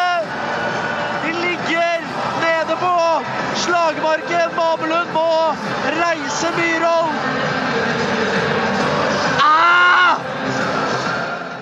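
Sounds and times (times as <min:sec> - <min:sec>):
crowd murmur: 0:00.0 - 0:11.6
speech: 0:04.2 - 0:08.5
reporter shouting at a goal: 0:09.4 - 0:10.2.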